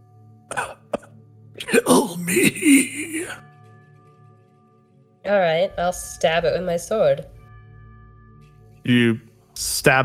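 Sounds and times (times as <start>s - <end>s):
person imitating the gravelly cough of a crawling creature: 0.5s - 3.4s
speech: 1.6s - 3.5s, 5.2s - 7.4s, 8.8s - 10.0s.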